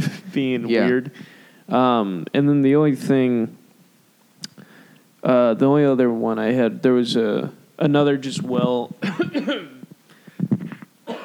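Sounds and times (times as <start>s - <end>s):
voice sounds: 0.0s - 2.2s
speech: 0.4s - 3.6s, 5.2s - 9.7s
person coughing away from the microphone: 9.0s - 9.9s, 11.1s - 11.2s.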